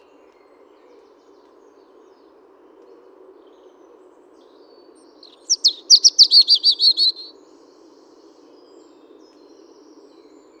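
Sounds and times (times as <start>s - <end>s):
European robin Erithacus rubecula chirping: 5.2s - 7.3s.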